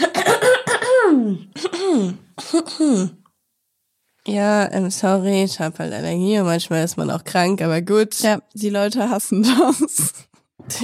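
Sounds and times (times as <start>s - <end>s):
person clearing throat: 0.0s - 3.2s
speech: 2.7s - 3.2s, 4.3s - 10.8s.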